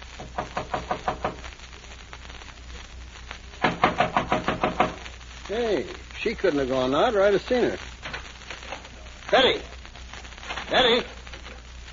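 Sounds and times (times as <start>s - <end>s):
knocking on a dressing room door: 0.3s - 1.4s, 3.6s - 5.0s
speech: 5.5s - 7.9s, 9.3s - 9.7s, 10.7s - 11.2s.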